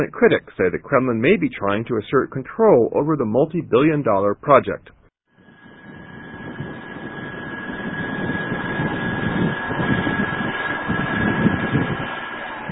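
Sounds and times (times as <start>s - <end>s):
speech: 0.0s - 5.0s
faint whining tone: 5.4s - 12.7s
large boat engine droning while cruising through a bay: 5.4s - 12.7s.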